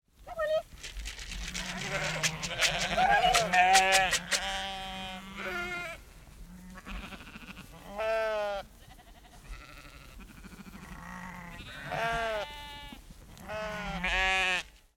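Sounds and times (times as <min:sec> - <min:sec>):
female farmer calling sheep: 0:00.2 - 0:00.7, 0:02.8 - 0:04.0
female farmer shaking food: 0:00.4 - 0:04.6
sheep herd bleating: 0:01.4 - 0:14.7.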